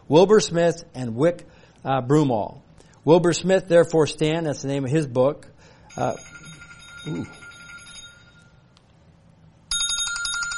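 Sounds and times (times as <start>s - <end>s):
speech: 0.1s - 6.3s, 7.0s - 7.4s
telephone ringing with a spam call: 5.9s - 8.6s, 9.7s - 10.5s.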